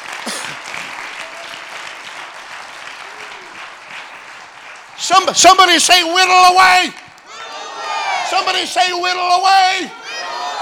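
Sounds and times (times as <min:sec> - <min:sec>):
audience clapping hands: 0:00.0 - 0:07.3
speech: 0:05.1 - 0:07.0, 0:08.4 - 0:10.0.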